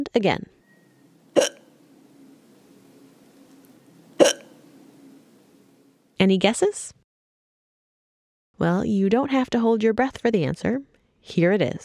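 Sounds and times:
speech: 0.0s - 0.6s, 1.4s - 1.6s, 6.2s - 7.0s, 8.6s - 11.8s
woman hiccuping: 1.4s - 1.7s, 4.2s - 4.6s.

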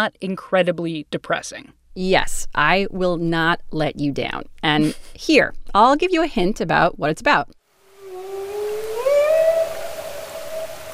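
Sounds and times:
speech: 0.0s - 7.6s
soft underwater hiss: 7.8s - 10.9s
humpback whale tonal moan: 7.9s - 10.9s.

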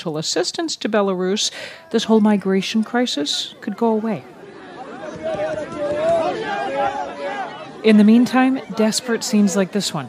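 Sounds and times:
speech: 0.0s - 4.4s, 5.2s - 7.1s, 7.8s - 10.0s
crowd of migrants shouting around a food truck: 3.0s - 10.0s.

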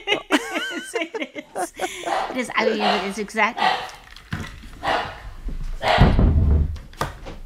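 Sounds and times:
laughter: 0.0s - 3.2s
dogs barking: 1.8s - 4.1s, 4.8s - 6.2s
speech: 2.4s - 3.8s.

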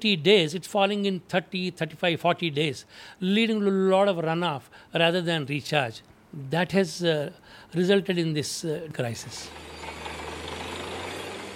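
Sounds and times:
speech: 0.0s - 10.0s
drilling rig boring through soil for groundwater in Telangana: 9.4s - 11.5s
drilling rig low engine hum: 9.5s - 11.5s.

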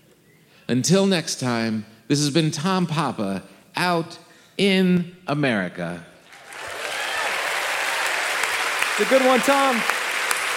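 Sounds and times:
speech: 0.7s - 6.1s, 9.0s - 10.0s
crowd applause: 6.3s - 10.5s.

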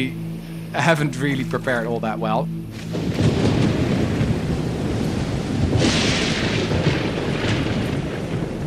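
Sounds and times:
speech: 0.0s - 3.5s
heavy rain: 0.0s - 8.6s
deep rolling thunder: 2.7s - 8.6s.

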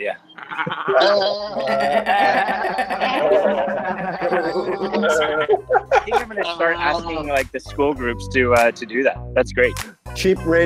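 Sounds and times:
speech: 0.0s - 10.6s
people laughing: 0.4s - 7.4s
several voices imitating a goat bleat: 0.4s - 7.4s.

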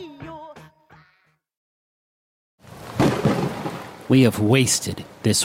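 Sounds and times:
rolling thunder in a thunderstorm: 2.8s - 4.1s
speech: 4.1s - 5.4s.

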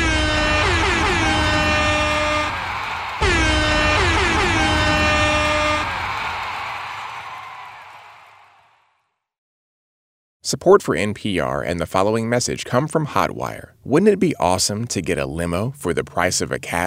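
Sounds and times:
loud air horn blasts: 0.0s - 6.4s
speech: 10.5s - 16.8s.

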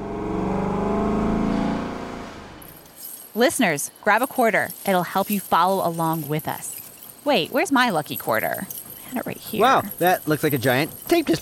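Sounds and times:
engine drone of a tiny armored truck flying: 0.0s - 2.8s
speech: 3.4s - 11.4s.

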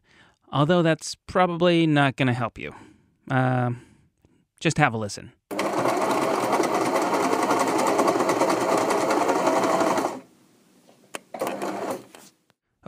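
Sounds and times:
speech: 0.5s - 3.9s, 4.6s - 5.4s
sewing machine running: 5.5s - 10.3s, 11.3s - 12.1s.

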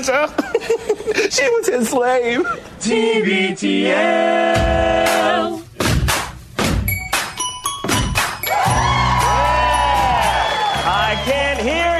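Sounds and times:
speech: 0.0s - 5.3s
rhythmic thumping: 4.5s - 11.9s
crowd cheering and whooping: 8.4s - 11.9s.

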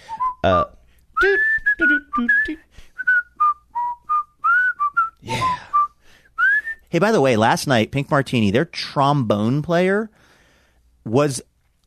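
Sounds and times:
person whistling a jaunty TV sitcom theme tune: 0.0s - 6.9s
speech: 0.4s - 0.8s, 2.2s - 2.6s, 6.9s - 10.2s, 11.1s - 11.5s.

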